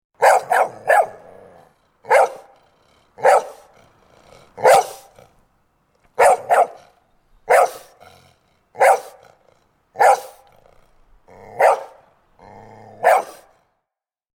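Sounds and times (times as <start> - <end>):
dog barking: 0.2 - 3.8, 4.5 - 5.2, 6.2 - 8.0, 8.8 - 9.4, 10.0 - 10.6, 11.4 - 12.1, 12.9 - 13.6.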